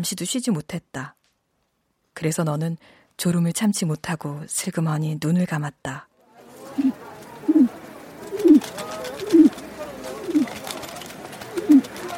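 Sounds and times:
speech: 0.0 - 1.2, 2.2 - 6.1
faint hiss: 0.0 - 10.6
pigeon cooing at the entrance of a night market: 6.6 - 12.1.

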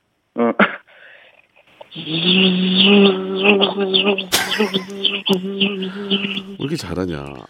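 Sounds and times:
speech: 0.4 - 0.8, 2.0 - 7.4
voice imitating a cicada buzzing: 1.8 - 7.4
laughter: 4.0 - 6.9.

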